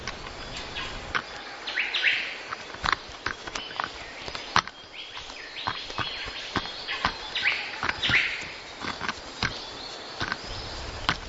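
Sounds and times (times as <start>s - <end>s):
young bird pecking at a tree trunk: 0.0s - 11.2s.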